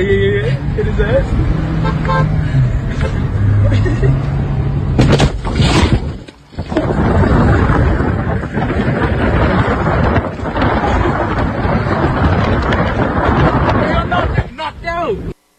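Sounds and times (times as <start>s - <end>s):
traffic rumble: 0.0s - 15.4s
loud car horn: 1.7s - 2.4s
sharp crash of car striking a man on a bicycle: 5.0s - 8.0s.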